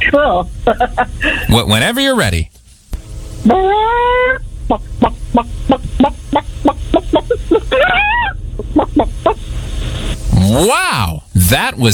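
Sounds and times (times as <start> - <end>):
speech: 0.1 - 2.5, 3.4 - 6.0, 10.4 - 11.9
person imitating a chicken squawking and clucking: 3.5 - 9.4, 10.4 - 11.2.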